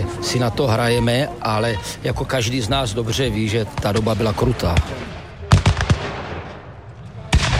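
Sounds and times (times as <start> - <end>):
speech: 0.2 - 5.2
loud black-powder gunshots: 4.2 - 6.6, 7.2 - 7.5.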